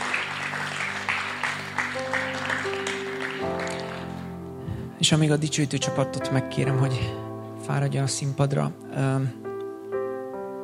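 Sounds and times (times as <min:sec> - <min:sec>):
crowd applauding: 0:00.0 - 0:04.4
sustained keyboard chords: 0:00.0 - 0:10.6
speech: 0:05.0 - 0:09.5.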